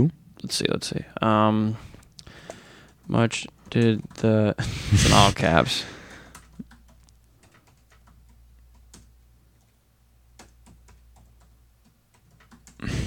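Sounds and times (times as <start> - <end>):
speech: 0.0 - 1.9, 3.1 - 6.0
low noise: 0.0 - 13.0
typing on a computer keyboard: 6.2 - 12.8.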